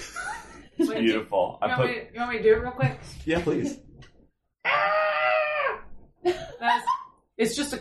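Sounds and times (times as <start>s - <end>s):
speech: 0.9s - 3.8s, 6.2s - 7.8s
person imitating screaming heard through a stethoscope held to a microphone: 4.6s - 5.9s.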